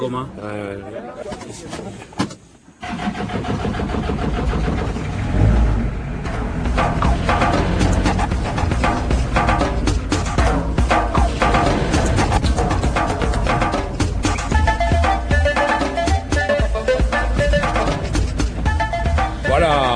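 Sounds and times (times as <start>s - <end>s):
speech: 0.0s - 2.2s, 2.8s - 5.1s
voices: 0.0s - 2.4s
heavy ore truck engine rumbling and revving: 2.8s - 19.9s.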